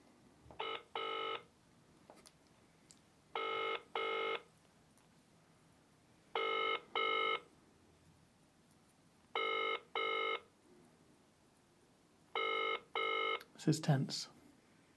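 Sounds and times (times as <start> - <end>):
phone ringing tone on a call waiting for an answer: 0.6 - 1.5, 3.4 - 4.5, 6.4 - 7.5, 9.4 - 10.5, 12.3 - 13.4
speech: 13.6 - 14.4.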